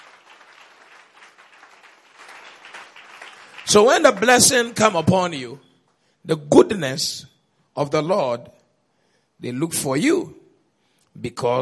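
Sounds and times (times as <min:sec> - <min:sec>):
audience applause: 0:00.0 - 0:05.1
speech: 0:03.7 - 0:08.6, 0:09.4 - 0:10.4, 0:11.2 - 0:11.5.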